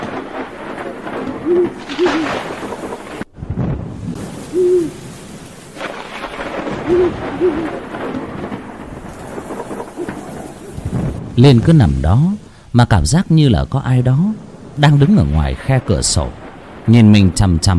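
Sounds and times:
rumbling thunder over mountain forest: 0.0 - 17.7
steady rainfall over mountain forest: 0.0 - 17.7
owl hooting in the rain: 1.4 - 2.4, 4.5 - 5.0, 6.8 - 7.8, 9.6 - 10.8
speech: 1.5 - 2.6, 11.4 - 17.7.

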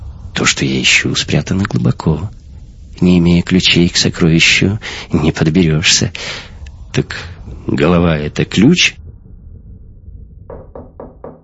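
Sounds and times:
speech: 0.4 - 2.4, 3.0 - 9.0
timid knocking on a door: 10.5 - 11.4.

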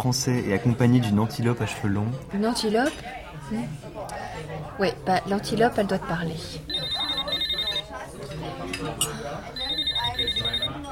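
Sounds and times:
speech: 0.0 - 7.0
telephone bell ringing in bright double trills: 6.7 - 8.0, 9.6 - 10.9.

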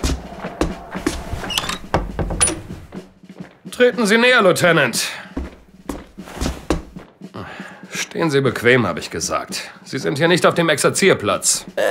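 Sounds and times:
door shut in an army officer's quarters in Kandahar: 1.5 - 3.0
speech: 3.8 - 5.2, 8.2 - 11.9.

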